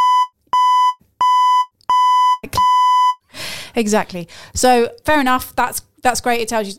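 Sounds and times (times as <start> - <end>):
refrigerator door-open alarm beeping: 0.0 - 3.2
speech: 3.7 - 6.7.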